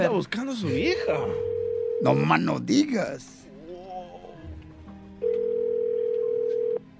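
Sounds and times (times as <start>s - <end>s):
speech: 0.0s - 3.4s
noise: 0.0s - 6.9s
telephone ringing tone while dialling a call: 1.2s - 2.3s, 5.2s - 6.8s.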